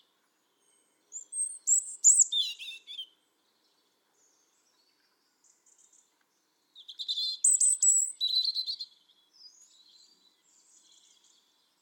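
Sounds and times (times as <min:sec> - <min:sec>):
European robin Erithacus rubecula high thin whistles and rapid twittering: 0:00.6 - 0:03.2, 0:06.8 - 0:11.6.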